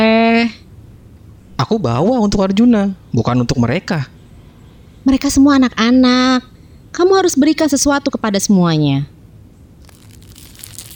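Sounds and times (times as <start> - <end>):
speech: 1.6 - 4.1, 5.0 - 9.1
plastic bag full of chocolates crinkling and rustling: 9.8 - 10.9.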